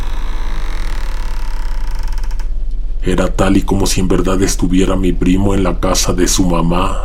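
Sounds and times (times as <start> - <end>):
house door creaking open: 0.0 - 2.9
low rumble: 0.0 - 7.0
speech: 3.0 - 7.0.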